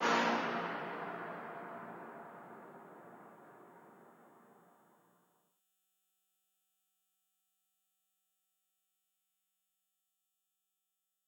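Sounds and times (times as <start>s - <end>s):
hits: 0.0s - 4.2s.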